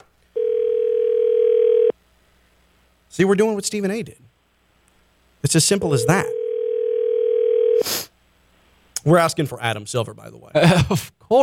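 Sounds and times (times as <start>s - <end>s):
telephone dial tone while dialing a number: 0.4s - 1.9s, 6.3s - 7.8s
speech: 3.2s - 4.2s, 5.4s - 6.4s, 9.0s - 11.4s.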